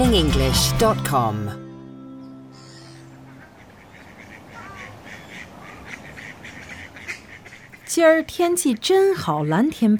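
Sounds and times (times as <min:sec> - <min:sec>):
speech: 0:00.1 - 0:01.6, 0:07.9 - 0:09.9
quiet outdoor hiss: 0:01.8 - 0:09.9
ducks quacking: 0:02.4 - 0:09.9.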